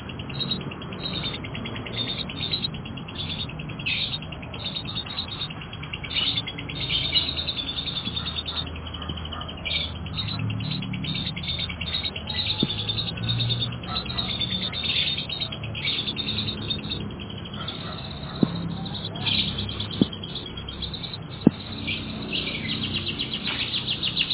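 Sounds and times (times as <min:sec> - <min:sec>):
canary twittering: 0:00.0 - 0:24.3
sharp taps: 0:18.2 - 0:22.0.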